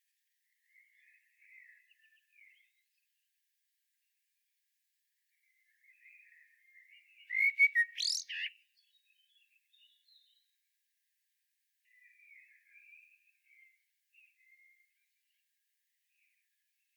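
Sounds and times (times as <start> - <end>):
common blackbird singing: 7.2 - 10.4.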